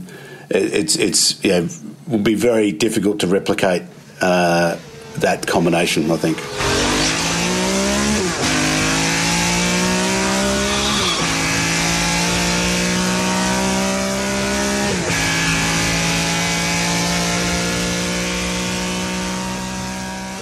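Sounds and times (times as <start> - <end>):
speech: 0.5 - 6.9
car engine with six dual-throat carburetors revving with a guttural snarl: 4.2 - 20.4.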